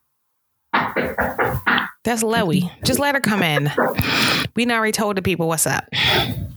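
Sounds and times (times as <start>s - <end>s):
knocking on a bedroom door: 0.8s - 1.9s
speech: 2.0s - 6.4s.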